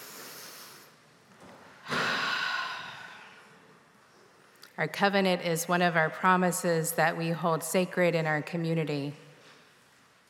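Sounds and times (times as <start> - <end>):
congregation drawing a deep breath in together during a worship service: 1.8 - 3.6
speech: 4.8 - 9.2.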